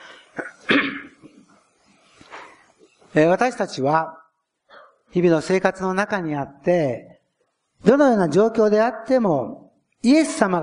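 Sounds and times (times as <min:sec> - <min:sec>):
person with a lingering cold coughing harshly: 0:00.1 - 0:01.4
speech: 0:03.2 - 0:04.2, 0:05.1 - 0:07.1, 0:07.8 - 0:10.6.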